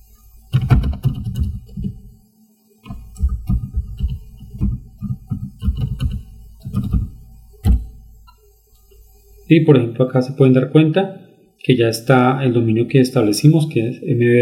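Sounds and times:
computer keyboard typing login credentials: 0.5 - 2.1, 2.8 - 8.0
speech: 9.5 - 14.4.

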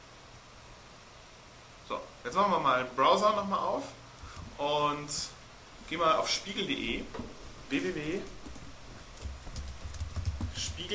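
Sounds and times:
speech: 1.9 - 4.0, 4.6 - 8.4, 10.7 - 10.9
fingers typing on a computer keyboard: 9.2 - 10.9.

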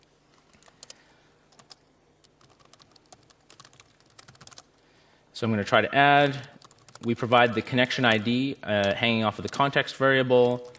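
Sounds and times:
faint steady hum: 0.0 - 10.7
code typed on a computer keyboard: 0.3 - 4.8, 6.2 - 7.2, 8.8 - 9.8, 10.4 - 10.7
speech: 5.4 - 10.7.

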